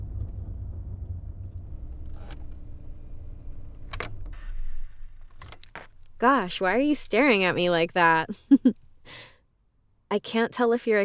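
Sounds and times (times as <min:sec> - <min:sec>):
parked car engine rumbling low on a street: 0:00.0 - 0:09.2
sharp mechanical clunks as the car is shut down: 0:01.7 - 0:09.2
speech: 0:06.2 - 0:09.3, 0:10.1 - 0:11.0.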